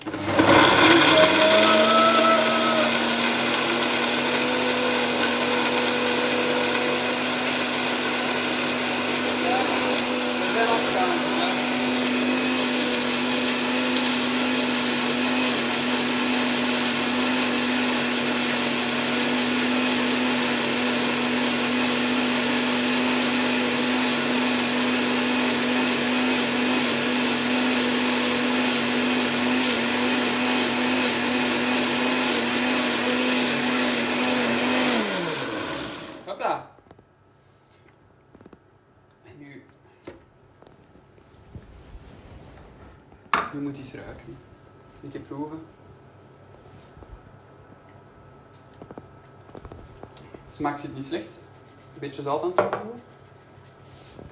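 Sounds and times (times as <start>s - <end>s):
kitchen blender running: 0.0s - 36.5s
speech: 45.1s - 45.7s, 50.6s - 51.4s, 52.0s - 53.1s.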